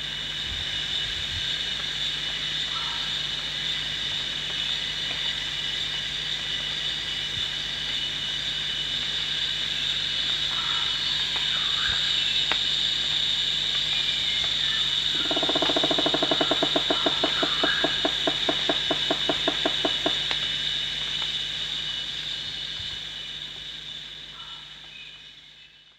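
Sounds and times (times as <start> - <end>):
continuous shrill insect chorus at Danum: 0.0 - 25.9
rufous woodpecker series of clipped notes at Danum: 14.6 - 20.3.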